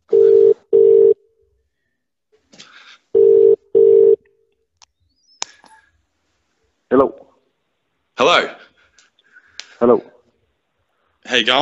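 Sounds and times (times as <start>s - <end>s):
phone ringback tone double rings of short steady beeps: 0.1s - 1.2s, 3.2s - 4.2s
speech: 6.9s - 7.2s, 9.8s - 10.1s, 11.4s - 11.6s.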